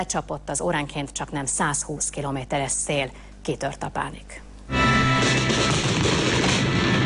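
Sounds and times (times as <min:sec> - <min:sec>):
speech: 0:00.0 - 0:06.6
rockets of a huge outdoor fireworks display crackling and booming: 0:05.2 - 0:07.0.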